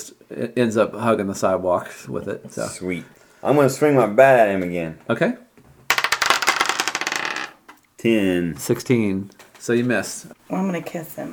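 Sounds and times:
speech: 0:00.0 - 0:05.4, 0:08.0 - 0:11.3
dice clattering across a hard tabletop: 0:05.8 - 0:07.8.

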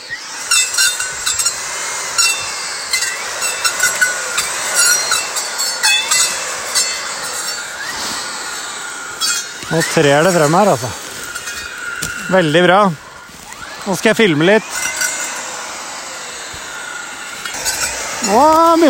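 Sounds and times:
file rasping across a saw's teeth: 0:00.4 - 0:12.8, 0:17.4 - 0:18.8
speech: 0:09.7 - 0:11.0, 0:12.3 - 0:13.0, 0:13.8 - 0:14.8, 0:18.3 - 0:18.8.

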